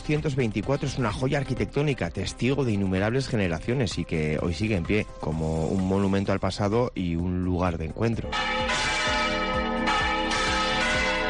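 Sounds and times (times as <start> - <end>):
speech: 0.1 - 8.6
church bells ringing from a bell tower of a 1224 church in La Rioja: 8.2 - 11.2.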